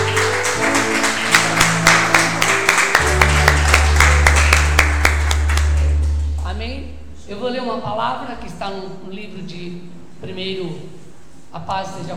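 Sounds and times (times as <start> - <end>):
audience clapping in a steady rhythmic beat: 0.0 - 6.6
sustained low musical drone: 0.0 - 7.3
speech: 7.9 - 12.1.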